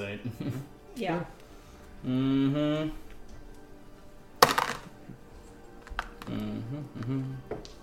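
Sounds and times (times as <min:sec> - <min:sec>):
speech: 0:00.0 - 0:01.4, 0:02.0 - 0:03.0, 0:06.3 - 0:07.8
dice clattering onto a hard surface: 0:04.4 - 0:05.0, 0:05.8 - 0:06.4.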